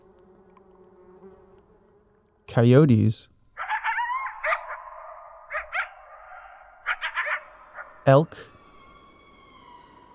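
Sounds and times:
bees buzzing outdoors: 0.0 - 3.1, 5.4 - 10.1
speech: 2.5 - 3.3, 8.1 - 8.5
high insect whine: 6.6 - 10.1.

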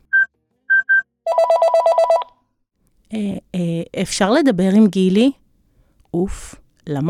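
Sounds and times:
phone keypad beeps: 0.2 - 2.3
speech: 3.1 - 5.4, 6.1 - 7.0.

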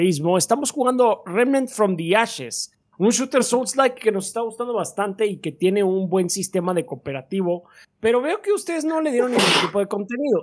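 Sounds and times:
speech: 0.0 - 10.4
person sneezing loudly: 9.2 - 9.8.

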